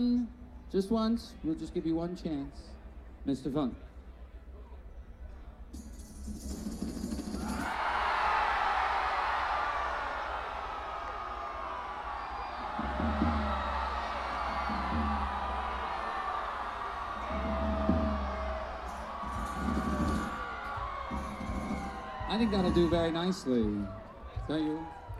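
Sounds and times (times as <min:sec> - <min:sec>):
speech: 0:00.0 - 0:03.9, 0:22.5 - 0:25.0
large crowd screaming and yelling: 0:07.3 - 0:25.1
whoops: 0:07.4 - 0:25.1.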